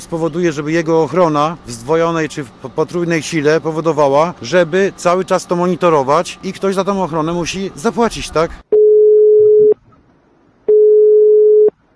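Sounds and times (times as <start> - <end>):
speech: 0.0 - 8.7
telephone line tone of unanswered call: 8.8 - 9.8, 10.7 - 11.8.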